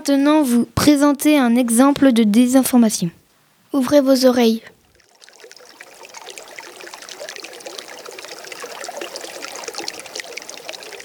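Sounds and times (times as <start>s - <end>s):
speech: 0.0s - 4.7s
water running from a tap: 5.0s - 11.0s.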